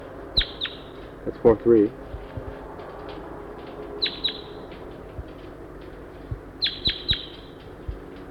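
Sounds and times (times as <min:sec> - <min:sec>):
low steady background hum: 0:00.0 - 0:08.3
wild female crossbill giving sharp high clipped kip notes: 0:00.4 - 0:01.0, 0:03.9 - 0:05.4, 0:06.3 - 0:08.0
speech: 0:01.2 - 0:02.0.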